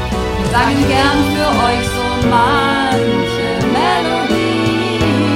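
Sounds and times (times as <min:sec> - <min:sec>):
multi-part voices: 0:00.1 - 0:05.3.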